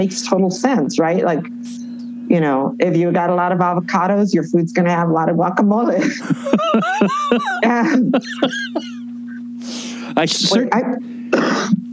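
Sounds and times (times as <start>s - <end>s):
speech: 0.0s - 9.0s, 9.6s - 11.9s
steady low hum: 0.0s - 11.9s
short voiced laugh-like sounds: 6.2s - 9.0s
person coughing into a microphone: 11.3s - 11.9s.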